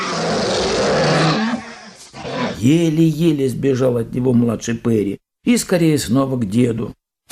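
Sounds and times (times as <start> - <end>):
angry bear roaring and growling: 0.0 - 2.7
speech: 2.6 - 7.0.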